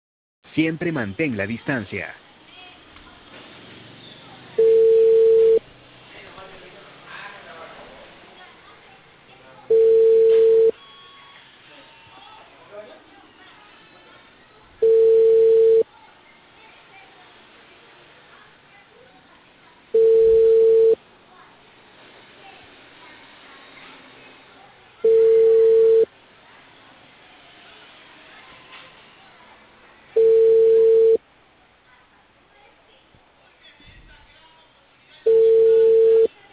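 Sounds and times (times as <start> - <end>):
faint noise: 0.4 - 36.5
speech: 0.6 - 2.2
telephone ringback tone while a call is placed: 4.6 - 5.6, 9.7 - 10.9, 14.8 - 15.8, 20.0 - 21.0, 25.0 - 26.1, 30.2 - 31.2, 35.3 - 36.3.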